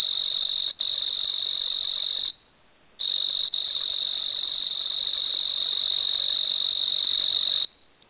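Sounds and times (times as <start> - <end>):
Oecanthus pictus trill at 24 degrees Celsius: 0.0 - 7.9.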